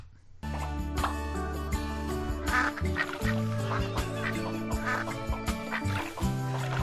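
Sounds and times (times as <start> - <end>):
loud busy game trailer music with bass and bright layered tones: 0.4 - 6.8
duck-like quacks: 2.5 - 6.2.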